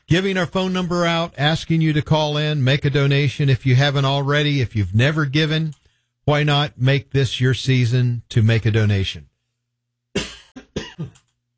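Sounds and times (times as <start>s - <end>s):
speech: 0.1s - 9.3s
person coughing from something caught in the throat: 10.2s - 11.3s.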